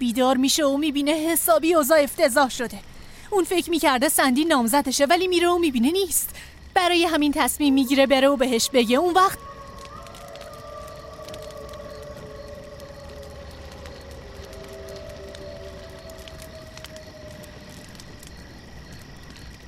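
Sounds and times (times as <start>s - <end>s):
speech: 0.0s - 9.5s
faint insect-like chirping: 0.0s - 19.6s
steady hiss: 0.0s - 19.6s
wolves howling in the distance: 7.6s - 19.6s.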